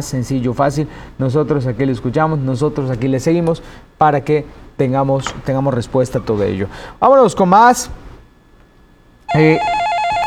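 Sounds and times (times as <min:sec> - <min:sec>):
speech: 0:00.0 - 0:08.0, 0:09.3 - 0:09.8
bright electronic telephone ringtone for an incoming call: 0:09.3 - 0:10.2.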